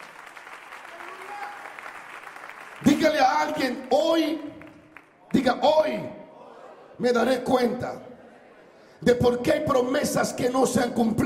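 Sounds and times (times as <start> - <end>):
large crowd applauding during a sermon: 0.0 - 5.6
speech: 2.8 - 4.6, 5.4 - 6.2, 7.0 - 8.1, 9.0 - 11.2.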